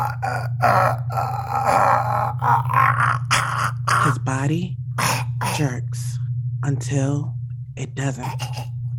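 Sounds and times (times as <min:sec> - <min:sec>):
speech: 0:00.0 - 0:03.3, 0:03.9 - 0:08.8
man choking as a rope tightens around his neck: 0:00.0 - 0:04.3, 0:05.0 - 0:05.8, 0:08.2 - 0:08.7.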